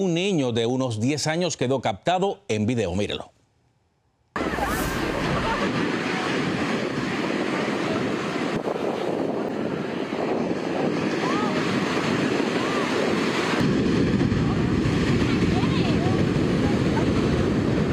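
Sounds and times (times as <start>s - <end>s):
speech: 0.0s - 3.4s
gusting wind buffeting the microphone: 4.4s - 17.9s
strong ocean waves crashing on a beach in Santa Cruz: 4.4s - 17.9s.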